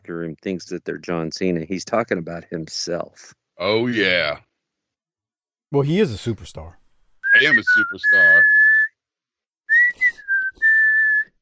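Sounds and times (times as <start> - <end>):
speech: 0.1 - 4.5, 5.7 - 8.5
person whistling a tune: 7.2 - 9.0, 9.7 - 11.4.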